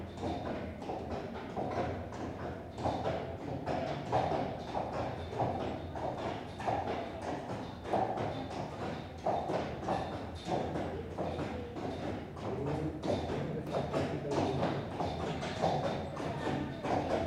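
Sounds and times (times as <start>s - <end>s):
footsteps on a greenway in an old railway tunnel: 0.0s - 17.2s.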